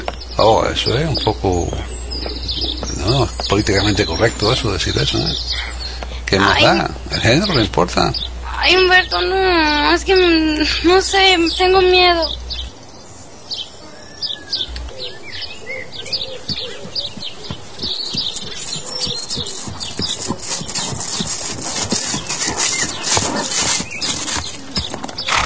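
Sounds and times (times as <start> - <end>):
mare hooves clip-clopping: 0.0 - 5.4, 16.0 - 25.4
speech: 0.4 - 2.3, 3.0 - 12.4.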